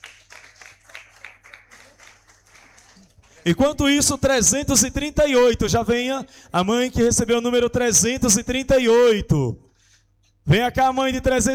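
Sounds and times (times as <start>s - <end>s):
audience clapping: 0.0s - 4.3s
speech: 3.4s - 9.6s, 10.4s - 11.5s.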